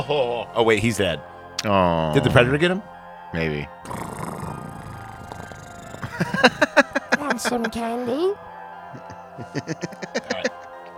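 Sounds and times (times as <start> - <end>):
speech: 0.0 - 4.1, 6.2 - 10.5
person imitating a cat's purr into a microphone: 3.9 - 6.7
laughter: 5.6 - 10.9.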